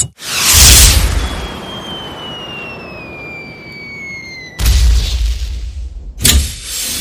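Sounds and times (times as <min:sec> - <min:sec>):
thin high whistle falling in pitch: 0:00.2 - 0:05.4
M72 LAW rocket explosion outside a cabin: 0:00.2 - 0:06.3
M72 LAW rocket launcher firing outside a cabin: 0:00.2 - 0:06.7.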